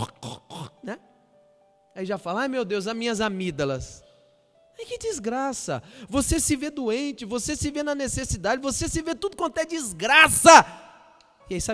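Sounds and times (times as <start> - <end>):
person imitating pig snorts with raspy throat-clearing grunts: 0.0 - 0.8
speech: 0.8 - 1.1, 2.0 - 4.0, 4.8 - 10.8, 11.5 - 11.7.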